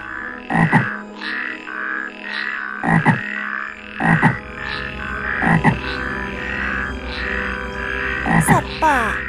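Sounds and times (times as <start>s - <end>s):
dense chorus of frogs croaking at a swamp in a forest: 0.0s - 9.2s
speech: 0.6s - 0.9s.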